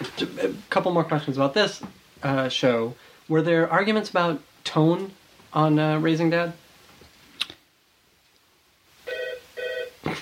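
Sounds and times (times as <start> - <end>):
speech: 0.4 - 6.6
telephone ringing electronically: 9.1 - 10.0.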